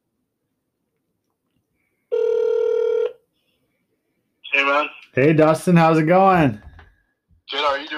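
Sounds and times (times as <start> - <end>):
ringback tone of an outgoing phone call: 2.1 - 3.2
speech: 4.7 - 6.7.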